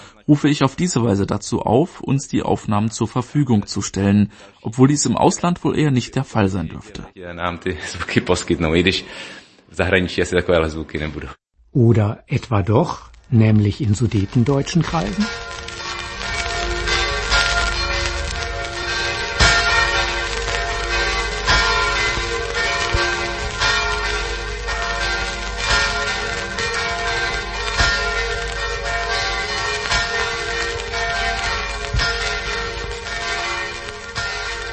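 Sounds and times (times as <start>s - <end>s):
speech: 0.2s - 15.4s
church bells ringing: 13.5s - 34.7s.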